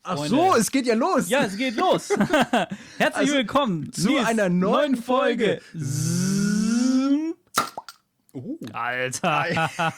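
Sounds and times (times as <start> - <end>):
speech: 0.1 - 6.2, 8.4 - 9.9
laughter: 1.4 - 3.5, 9.1 - 9.9
cork squeaking and popping out of a bottle: 7.5 - 8.0.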